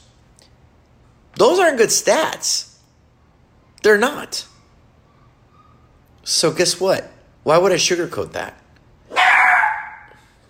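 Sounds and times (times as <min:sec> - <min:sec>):
speech: 0:01.4 - 0:02.7, 0:03.8 - 0:04.5, 0:06.3 - 0:08.6
dog barking: 0:09.1 - 0:10.2.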